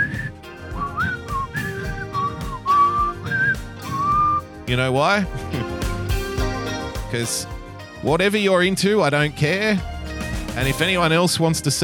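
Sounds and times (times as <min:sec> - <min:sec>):
person whistling a wandering bright melody: 0:00.0 - 0:04.5
steady instrumental backing music: 0:00.0 - 0:11.8
speech: 0:04.7 - 0:05.8, 0:07.1 - 0:09.9, 0:10.6 - 0:11.8.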